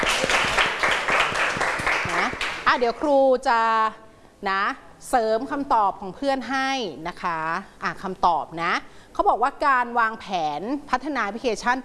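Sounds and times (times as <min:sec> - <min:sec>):
classroom applause for a student who gave a correct answer: 0:00.0 - 0:02.9
speech: 0:02.7 - 0:11.8.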